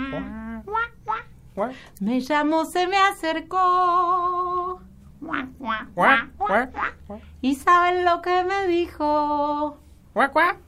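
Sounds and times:
duck quacking: 0.0 - 1.3, 5.2 - 7.2
speech: 0.1 - 0.4, 1.6 - 4.6, 5.3 - 10.6.

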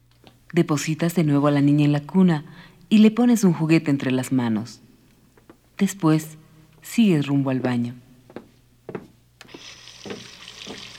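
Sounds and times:
speech: 0.5 - 4.8, 5.8 - 8.0
water running from a tap in a hissing stream: 9.5 - 10.9.

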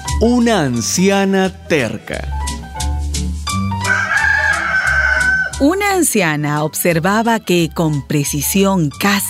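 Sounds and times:
speech: 0.2 - 2.4, 5.6 - 9.2
rooster crowing: 3.8 - 5.7.

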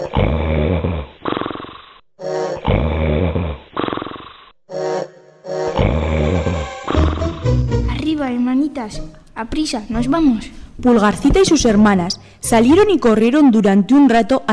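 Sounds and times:
loud deep rattling ogre snoring: 0.0 - 2.0, 2.6 - 4.5, 5.8 - 7.9
speech: 8.8 - 14.5.

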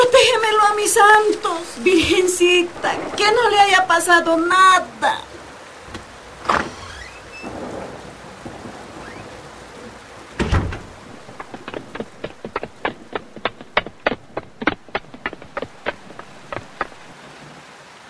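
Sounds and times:
low rumble of distant thunder: 0.0 - 17.1
steady rain hissing: 0.0 - 18.0
speech: 0.9 - 5.3
sharp drip-like taps: 10.4 - 17.1.

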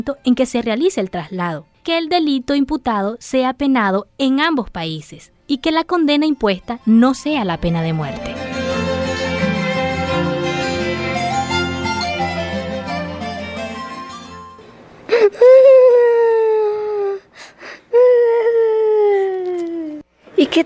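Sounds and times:
speech: 0.0 - 8.6, 20.4 - 20.6
soft music: 0.0 - 14.8
child crying with wailing sobs: 15.1 - 17.3, 17.9 - 20.0
child whimpering: 15.1 - 20.0.

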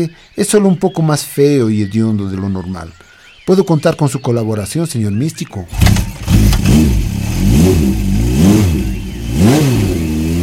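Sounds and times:
speech: 0.0 - 6.1, 6.7 - 8.1
motorcycle in very bad condition revving: 5.7 - 10.4.

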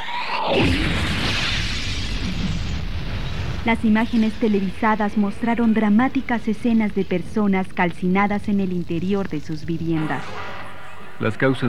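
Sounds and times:
speech: 0.5 - 0.9, 3.6 - 10.4, 11.2 - 11.6
explosion with deep boom: 0.5 - 4.5.

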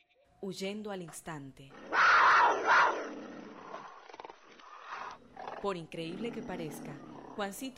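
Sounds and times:
speech: 0.4 - 1.9, 2.6 - 3.4, 5.6 - 7.7
hungry tiger roaring: 1.7 - 7.7.

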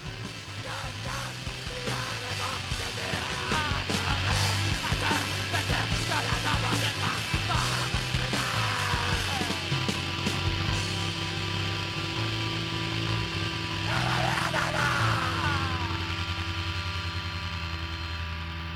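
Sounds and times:
dense grinding mechanical din: 0.0 - 18.6
desperate human screaming in strained bursts: 13.8 - 16.1.

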